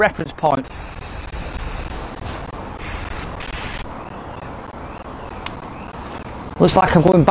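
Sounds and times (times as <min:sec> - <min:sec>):
speech: 0:00.0 - 0:00.9, 0:06.6 - 0:07.2
steady noise: 0:00.0 - 0:07.2
athlete's foot aerosol spray being sprayed onto golf clubs: 0:00.7 - 0:02.0, 0:02.8 - 0:03.9.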